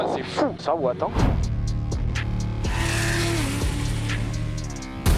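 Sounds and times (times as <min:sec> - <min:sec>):
speech: 0:00.2 - 0:01.4
1300-horsepower modified car engine accelerating hard through gear shifts: 0:01.5 - 0:05.1.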